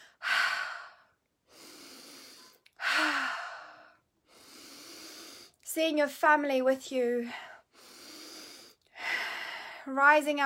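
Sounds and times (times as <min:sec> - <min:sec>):
deep breathing in through the nose and out through the mouth during a guided breathing exercise: 0:00.0 - 0:05.6, 0:07.3 - 0:09.9
speech: 0:05.8 - 0:07.5, 0:09.9 - 0:10.4.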